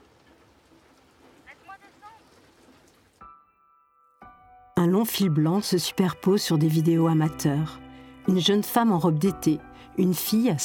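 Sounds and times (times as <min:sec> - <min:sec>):
heavy rain pouring: 0:00.0 - 0:03.2
speech: 0:04.8 - 0:10.6.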